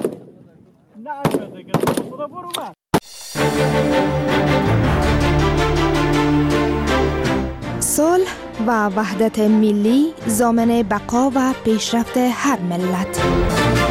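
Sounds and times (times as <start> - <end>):
gunshots during shooting practice at targets: 0.0 - 2.3
speech: 1.0 - 4.3, 8.0 - 13.8
dense steady musical bed: 3.0 - 13.8.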